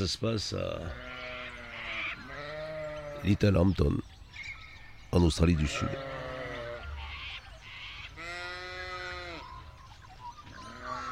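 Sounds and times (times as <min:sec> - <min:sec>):
speech: 0:00.0 - 0:01.1, 0:03.2 - 0:04.1, 0:05.2 - 0:06.2
Suffolk sheep bleating: 0:00.8 - 0:03.4, 0:05.6 - 0:07.0, 0:08.1 - 0:09.4, 0:10.6 - 0:11.1.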